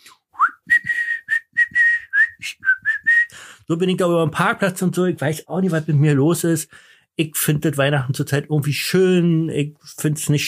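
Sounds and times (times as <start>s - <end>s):
person whistling a Christmas melody: 0.3s - 3.4s
speech: 3.7s - 10.4s.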